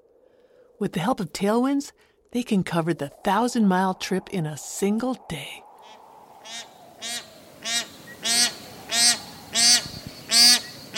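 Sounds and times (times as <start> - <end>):
speech: 0.8 - 5.6, 6.5 - 6.7
bar-headed geese honking: 6.4 - 10.9.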